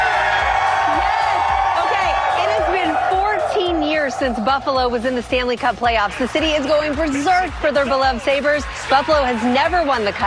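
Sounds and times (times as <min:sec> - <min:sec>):
crowd of hockey fans cheering and whooping during playoffs: 0:00.0 - 0:05.2, 0:07.8 - 0:10.2
speech: 0:04.2 - 0:10.2.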